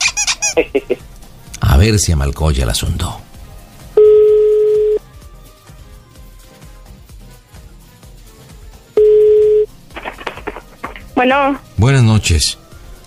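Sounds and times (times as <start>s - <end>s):
faint music: 0.0s - 13.0s
speech: 0.6s - 1.1s, 1.8s - 3.2s, 11.2s - 12.6s
telephone ringback tone from a call to a cell phone: 4.0s - 5.0s, 9.0s - 9.7s.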